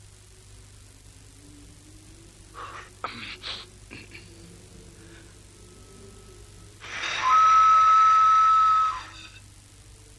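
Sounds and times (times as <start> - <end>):
whistle blast: 6.8 - 9.2.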